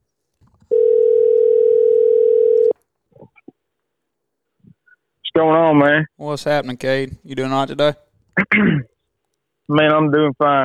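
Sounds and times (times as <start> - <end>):
phone call ringing tone: 0.7 - 2.8
speech: 5.4 - 8.9, 9.7 - 10.6.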